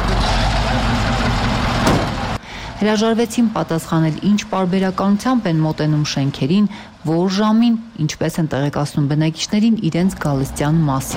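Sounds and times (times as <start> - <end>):
full garbage truck engine rumbling while moving slowly: 0.0 - 7.1
speech: 2.8 - 11.1.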